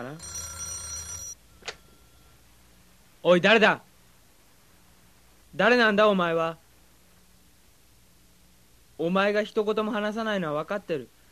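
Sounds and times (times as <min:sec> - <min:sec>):
speech: 0:00.0 - 0:00.4, 0:03.2 - 0:03.9, 0:05.6 - 0:06.6, 0:09.0 - 0:11.2
telephone ringing, left unanswered: 0:00.0 - 0:02.4.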